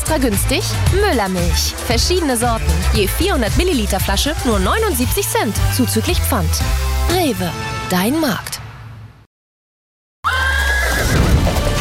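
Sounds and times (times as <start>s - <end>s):
speech: 0.1s - 8.6s
horse whinny in an advertisement for a horse riding and stunt show: 10.3s - 11.4s.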